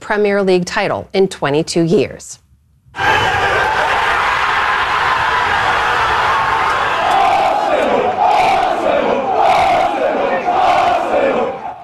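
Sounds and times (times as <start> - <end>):
speech: 0.1 - 2.4, 3.0 - 3.4
football fans chanting in the street: 3.0 - 11.8.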